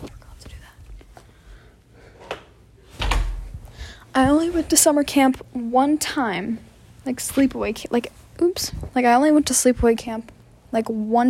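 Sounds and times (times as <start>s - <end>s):
door swinging shut: 3.0s - 3.5s
speech: 4.2s - 11.2s.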